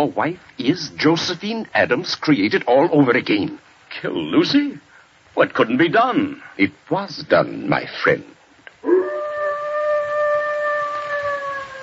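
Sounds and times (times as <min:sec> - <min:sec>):
speech: 0:00.0 - 0:09.0
dog howling: 0:08.8 - 0:11.8.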